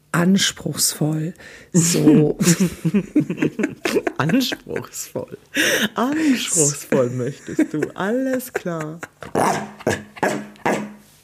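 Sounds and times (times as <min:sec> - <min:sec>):
speech: 0:00.2 - 0:09.7
laughter: 0:01.9 - 0:10.4
dog growling and barking: 0:09.2 - 0:11.0.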